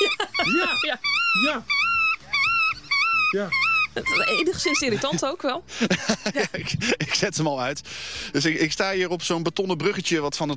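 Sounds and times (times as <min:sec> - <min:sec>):
laughter: 0:00.0 - 0:01.0, 0:04.0 - 0:07.4
black-tailed godwit calls played from a phone speaker: 0:00.0 - 0:05.0
speech: 0:00.5 - 0:01.8, 0:03.3 - 0:10.5.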